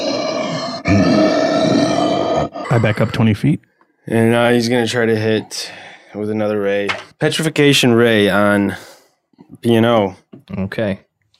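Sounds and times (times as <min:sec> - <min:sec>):
voice imitating a creature's heavy breathing: 0:00.0 - 0:03.5, 0:04.7 - 0:06.2
speech: 0:02.8 - 0:11.0.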